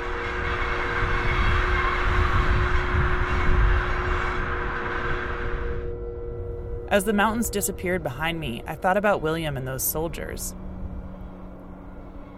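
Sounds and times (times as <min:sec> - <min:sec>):
train rumbling along the rails: 0:00.0 - 0:05.9, 0:06.9 - 0:12.3
faint steady hum: 0:05.0 - 0:12.3
speech: 0:06.9 - 0:10.6.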